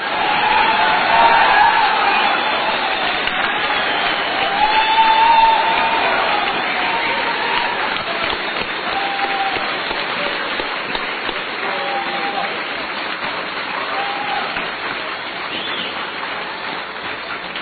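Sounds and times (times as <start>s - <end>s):
audience whoops and cheers: 0.0s - 10.4s, 11.6s - 12.6s, 13.8s - 14.7s
audience applause from a sizable crowd: 0.0s - 17.6s.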